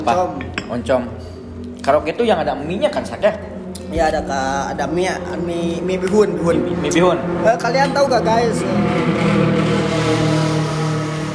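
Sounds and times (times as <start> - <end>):
speech: 0.0 - 9.6
motorcycle engine droning: 4.3 - 11.3.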